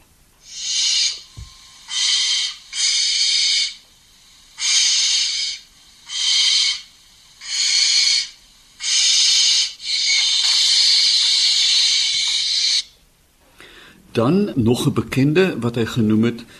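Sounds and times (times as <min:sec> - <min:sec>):
barn owl screeching: 0:00.4 - 0:13.0
speech: 0:14.2 - 0:16.5.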